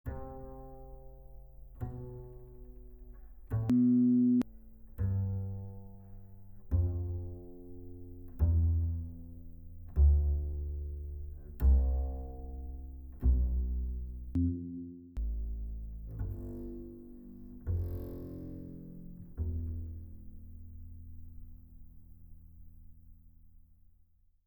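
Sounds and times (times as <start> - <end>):
acoustic bass playing a scale: 0.0 - 23.3.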